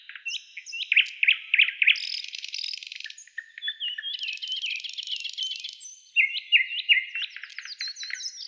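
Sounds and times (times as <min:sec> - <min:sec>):
nightingale song: 0:00.0 - 0:08.4.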